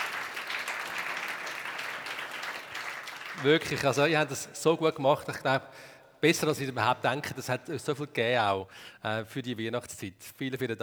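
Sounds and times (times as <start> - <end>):
audience applause: 0.0 - 4.0
speech: 3.4 - 10.8.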